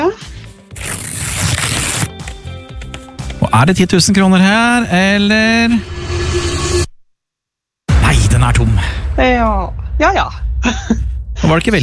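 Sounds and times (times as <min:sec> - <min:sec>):
lottery ticket paper being torn open: 0:00.7 - 0:02.2
speech: 0:03.5 - 0:06.4, 0:08.5 - 0:11.8.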